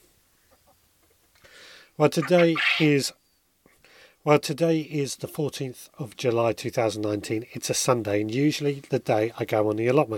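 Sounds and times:
soft rustling hiss: 0.0 - 10.1
speech: 2.0 - 3.2, 4.2 - 10.1
chicken clucking and squawking: 2.1 - 3.0.

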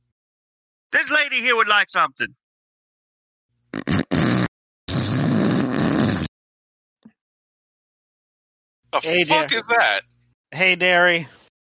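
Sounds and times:
speech: 1.0 - 2.4, 8.9 - 11.4
person hawking up phlegm: 3.8 - 6.3.

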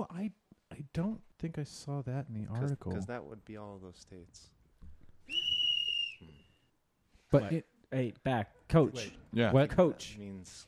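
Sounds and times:
speech: 0.0 - 0.4, 1.0 - 4.6, 7.3 - 10.6
single sharp high-pitched whistle blast: 5.3 - 6.7.

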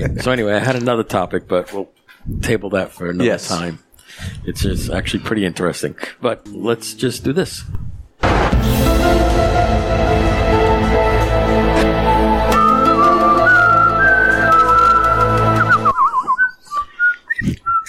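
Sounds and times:
speech: 0.0 - 7.9
full sustained music backing: 8.2 - 16.0
melodic whistling with trills: 12.2 - 17.8.

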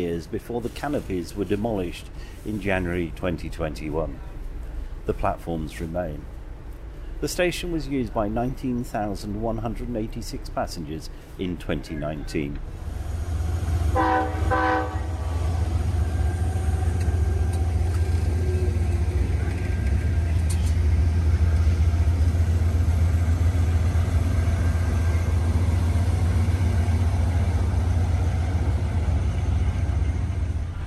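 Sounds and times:
speech: 0.0 - 4.4, 5.0 - 6.3, 7.2 - 12.8, 14.0 - 14.7
train rattling along rough track at rapid pace heard on board: 0.0 - 30.8
brief train horn: 13.7 - 18.0.

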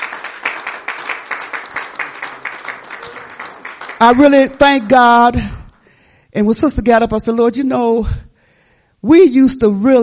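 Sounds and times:
church audience clapping: 0.0 - 5.9
speech: 4.0 - 5.5, 6.3 - 8.2, 9.0 - 10.0.

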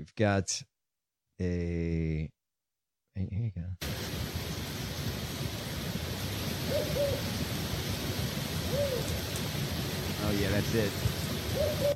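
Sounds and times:
speech: 0.0 - 0.7, 1.4 - 2.4, 3.2 - 4.0, 10.2 - 11.9
steady rushing hiss: 3.8 - 11.9
northern spotted owl hooting: 6.6 - 7.4, 8.6 - 9.2, 11.5 - 11.9.

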